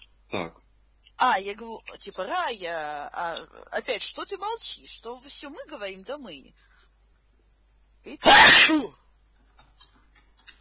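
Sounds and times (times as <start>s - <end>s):
speech: 1.3s - 6.7s, 8.0s - 9.0s
person sneezing: 8.2s - 9.0s.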